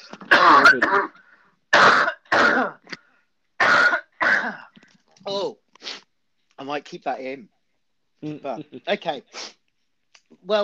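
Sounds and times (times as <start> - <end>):
person coughing: 0.2 - 2.9, 3.6 - 4.7
person clearing throat: 0.2 - 3.0, 3.6 - 4.8
speech: 0.7 - 1.2, 6.8 - 7.6, 8.2 - 9.5, 10.4 - 10.6.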